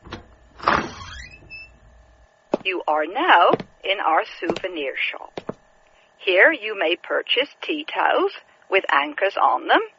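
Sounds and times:
door opening with a squeak inside a small house-style museum: 0.0s - 1.9s
speech: 2.6s - 5.4s, 6.2s - 9.9s.

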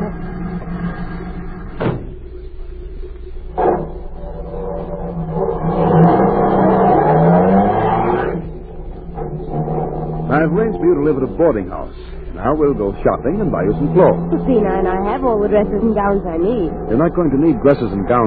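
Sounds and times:
waiting car engine running: 0.0s - 18.2s
car doors shutting: 1.8s - 2.2s
speech: 11.0s - 18.2s.

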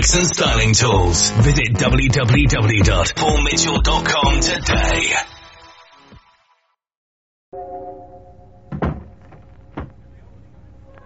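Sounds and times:
speech: 0.0s - 5.4s
steady low hum: 8.2s - 11.0s
door shutting with two solid thumps: 8.7s - 10.0s.

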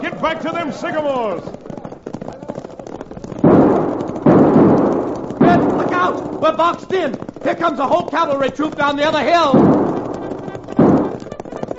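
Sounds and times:
speech: 0.2s - 1.6s, 5.5s - 9.8s
Winchester army rifles firing in a western shootout: 2.9s - 11.7s.

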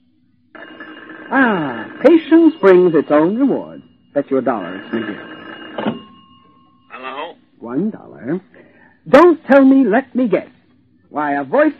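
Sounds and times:
telephone with a bright buzzing electronic ring: 0.5s - 7.6s
speech: 0.6s - 5.3s, 7.7s - 11.7s.

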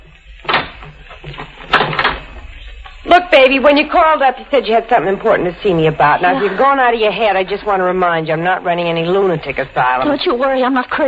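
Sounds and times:
door closing with a muffled thump: 0.4s - 2.3s
speech: 3.3s - 11.0s.

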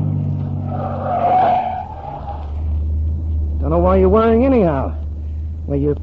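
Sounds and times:
car tires squealing and skidding: 0.0s - 2.8s
powerful souped-up car engine roaring: 0.0s - 6.0s
speech: 5.7s - 6.0s.

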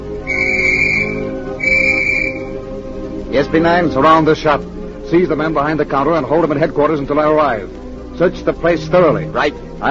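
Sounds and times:
police whistle blown outside a flower shop: 0.2s - 2.6s
speech: 3.5s - 9.8s.

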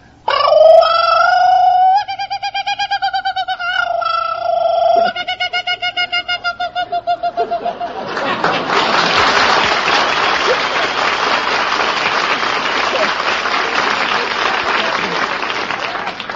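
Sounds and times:
man imitating a kookaburra call: 0.2s - 8.0s
laughter: 4.9s - 16.2s.

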